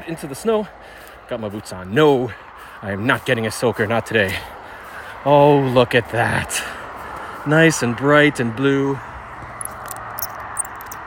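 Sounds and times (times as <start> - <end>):
speech: 0.1 - 4.6, 5.2 - 6.8, 7.4 - 9.1
small shiny metal bison tube geocache container clicking and squeaking in the snow: 9.6 - 11.0.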